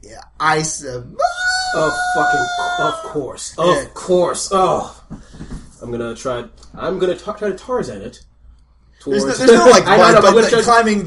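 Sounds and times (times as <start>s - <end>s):
speech: 0.0s - 5.0s, 5.8s - 8.3s, 9.0s - 11.0s
voice imitating a distant scream from the treetops: 1.2s - 3.2s.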